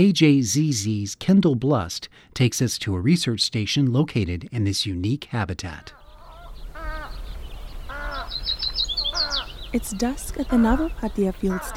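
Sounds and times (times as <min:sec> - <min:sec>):
speech: 0:00.0 - 0:06.0, 0:09.7 - 0:11.7
loud harsh harmonic warbler and willet calls at a field station: 0:05.7 - 0:11.7.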